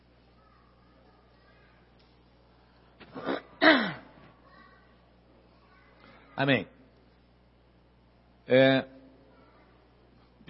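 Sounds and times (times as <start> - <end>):
person clearing throat: 3.0 - 4.2
speech: 6.4 - 6.8, 8.5 - 8.9.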